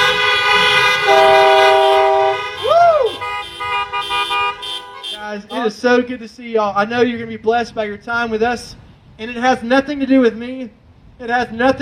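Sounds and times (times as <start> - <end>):
several car horns honking outside a church: 0.0 - 5.7
speech: 5.7 - 11.8.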